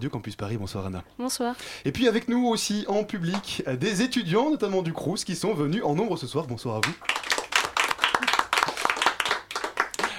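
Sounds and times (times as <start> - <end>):
speech: 0.0 - 7.3
room full of people applauding: 6.8 - 10.1.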